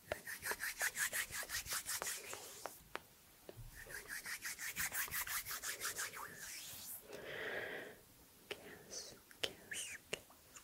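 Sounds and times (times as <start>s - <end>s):
hand movements swishing strokes: 0.1s - 2.8s, 3.7s - 7.1s
humming breath: 7.1s - 8.0s.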